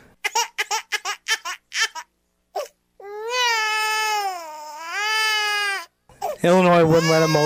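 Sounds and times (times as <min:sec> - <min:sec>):
crybaby sound effect of a baby wailing: 0:00.2 - 0:07.4
speech: 0:06.4 - 0:07.4.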